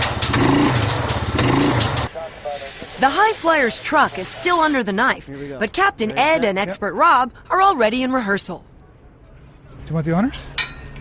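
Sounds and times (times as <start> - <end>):
four-wheeler engine revving hard while failing to pull a load: 0.0 - 2.1
speech: 3.0 - 8.7, 9.9 - 10.6.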